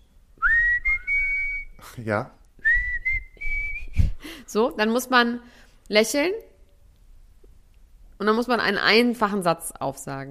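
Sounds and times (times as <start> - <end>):
person whistling a melody: 0.4 - 1.8, 2.6 - 4.2
speech: 2.0 - 2.4, 4.5 - 6.5, 8.2 - 10.2.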